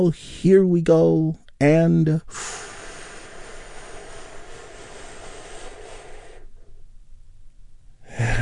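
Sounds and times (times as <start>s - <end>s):
speech: 0.0s - 2.7s
long deep breath drawn in during guided relaxation: 2.3s - 6.9s.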